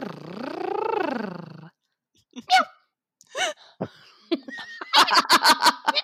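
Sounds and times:
voice imitating a cat's purr: 0.0s - 1.8s
laughter: 3.8s - 6.0s.

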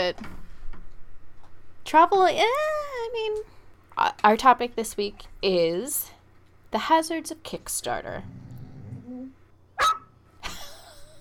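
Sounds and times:
speech: 0.1s - 0.4s, 1.8s - 6.1s, 6.7s - 8.4s, 9.8s - 10.0s
dog barking: 9.8s - 10.1s.

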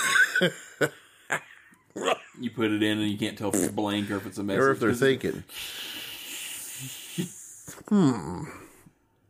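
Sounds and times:
speech: 0.4s - 6.0s, 6.8s - 8.6s
voice imitating cassette tape hiss: 5.5s - 8.7s.

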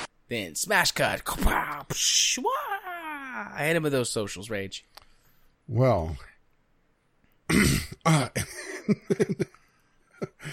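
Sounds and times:
speech: 0.3s - 2.8s, 3.4s - 5.0s, 5.7s - 6.3s, 7.5s - 9.6s, 10.2s - 10.5s
person coughing: 7.5s - 8.9s.

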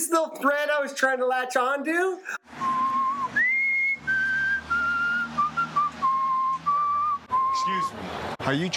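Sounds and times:
speech: 0.1s - 2.4s, 7.6s - 8.7s
person whistling a slow sustained melody: 2.6s - 7.9s.

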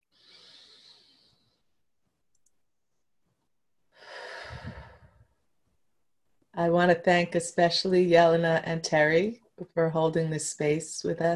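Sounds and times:
full loud exhale with a low rushing body: 0.1s - 1.4s, 4.0s - 5.3s
slow deep breath drawn in: 0.1s - 1.6s, 3.9s - 5.3s
speech: 6.6s - 11.3s.

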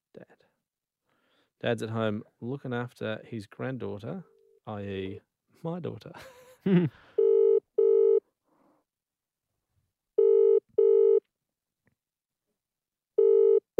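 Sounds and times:
speech: 1.6s - 7.1s
telephone ringing out on a call home in double bursts: 7.2s - 8.2s, 10.2s - 11.2s, 13.2s - 13.7s.

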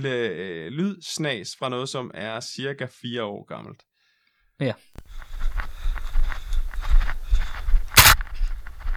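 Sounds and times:
speech: 0.0s - 3.9s, 4.6s - 5.6s
running footsteps on soft ground in a forest: 5.0s - 8.9s
crunch or rustle: 5.2s - 8.9s.

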